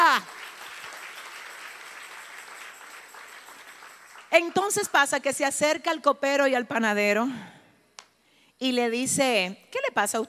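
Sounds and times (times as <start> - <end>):
congregation applauding: 0.0 - 4.9
speech: 4.3 - 7.6, 8.6 - 10.2.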